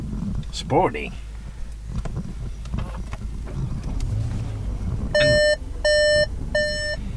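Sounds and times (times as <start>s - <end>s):
low idling car engine rumble: 0.0s - 7.1s
speech: 0.6s - 1.3s
electronic car door-open alert warning beeps: 5.1s - 7.1s.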